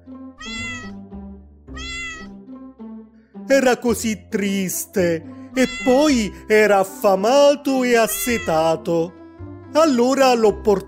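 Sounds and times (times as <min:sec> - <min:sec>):
speech: 0:00.1 - 0:00.7, 0:03.5 - 0:10.8
kitten meowing: 0:00.4 - 0:01.0, 0:01.7 - 0:02.4, 0:05.6 - 0:06.2, 0:08.0 - 0:08.8.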